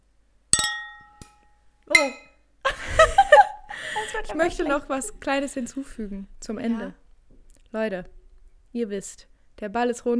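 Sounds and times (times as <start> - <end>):
glasses clinking in a toast: 0.6 - 3.3
speech: 1.9 - 2.3, 4.2 - 7.0, 7.7 - 10.1
laughter: 2.7 - 5.1.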